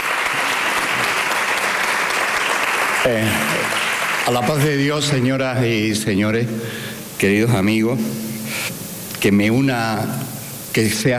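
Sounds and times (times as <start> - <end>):
large audience applause: 0.0 - 5.1
speech: 3.0 - 3.6, 4.2 - 8.6, 9.2 - 11.1.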